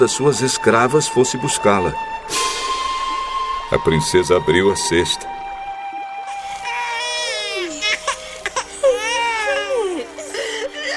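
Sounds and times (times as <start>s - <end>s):
speech: 0.0s - 2.7s, 3.7s - 5.4s
baby crying in long wavering wails: 6.2s - 10.9s.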